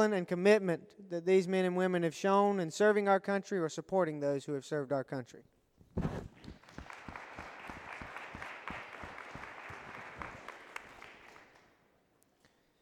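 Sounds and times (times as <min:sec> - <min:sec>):
speech: 0:00.0 - 0:06.2
church audience applauding during a sermon: 0:06.4 - 0:11.8.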